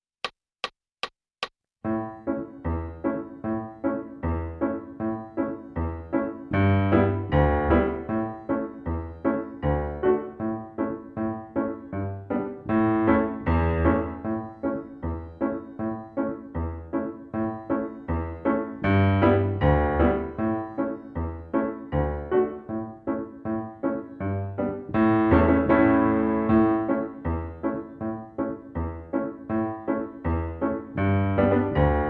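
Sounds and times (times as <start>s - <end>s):
piano accompaniment: 1.8s - 32.0s.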